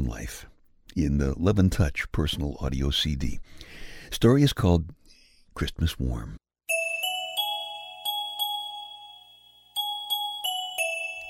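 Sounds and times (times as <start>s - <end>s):
speech: 0.1s - 5.0s, 5.6s - 6.4s
bells ringing: 6.7s - 11.2s.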